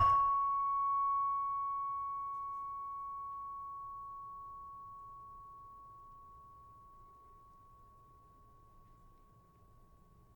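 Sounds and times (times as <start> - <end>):
gamelan-tuned saron note in C sharp: 0.0 - 3.1.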